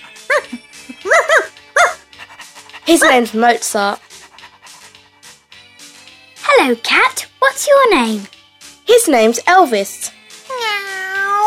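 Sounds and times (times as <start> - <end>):
dog barking: 1.1 - 2.1
speech: 2.9 - 4.1, 6.6 - 10.2.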